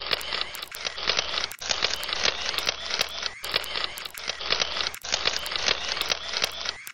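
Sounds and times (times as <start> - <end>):
camera sounds: 0.0 - 6.9.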